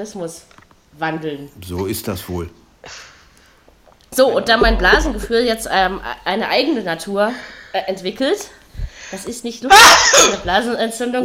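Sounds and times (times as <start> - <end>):
speech: 0.0 - 3.1, 4.2 - 11.2
single loud sudden sneeze: 9.7 - 10.5.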